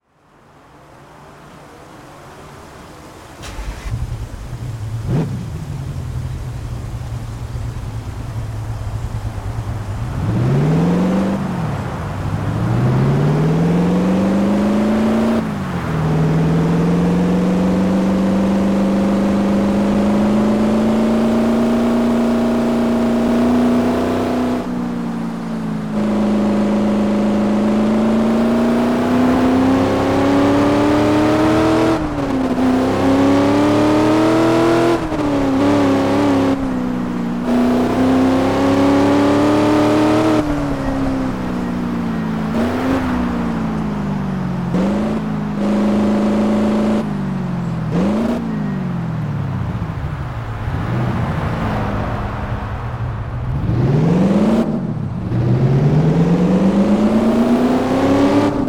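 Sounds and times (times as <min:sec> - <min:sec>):
2012 Mercedes-Benz C 63 AMG engine: 0:00.0 - 0:58.6.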